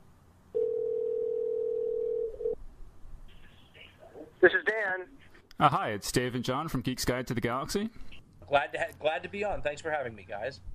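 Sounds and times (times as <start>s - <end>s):
telephone dial tone as a phone call is placed: 0.6s - 2.6s
speech: 4.8s - 10.7s.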